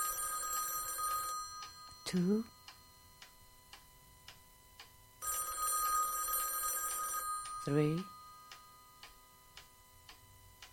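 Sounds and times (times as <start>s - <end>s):
telephone bell ringing with a metallic trill: 0.0s - 3.1s, 5.2s - 9.0s
speech: 2.1s - 2.6s, 7.6s - 8.2s.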